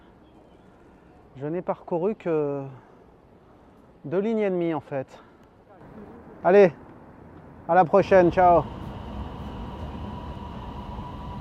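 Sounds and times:
speech: 0:01.4 - 0:02.9, 0:04.0 - 0:05.3, 0:06.4 - 0:06.8, 0:07.7 - 0:08.8
Beijing subway train running with steady dense rumble and mechanical hum: 0:08.0 - 0:11.3.

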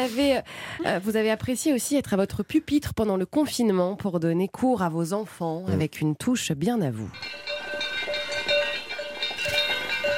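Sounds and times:
speech: 0:00.0 - 0:07.5
cowbell clanking: 0:07.1 - 0:10.1.

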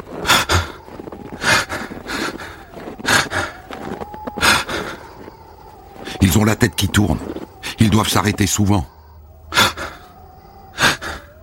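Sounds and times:
people panting heavily while climbing a mountain pass at 4,400 metres altitude: 0:00.0 - 0:06.4, 0:08.9 - 0:11.4
speech: 0:06.2 - 0:09.0.

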